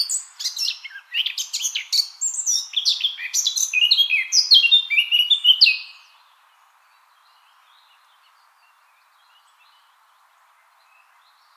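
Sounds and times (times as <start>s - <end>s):
Eurasian blackcap Sylvia atricapilla singing: 0.0s - 6.1s.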